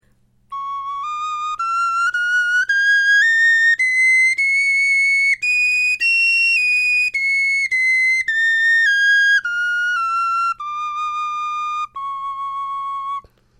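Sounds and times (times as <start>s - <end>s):
bone flute playing a scale: 0.5s - 13.3s.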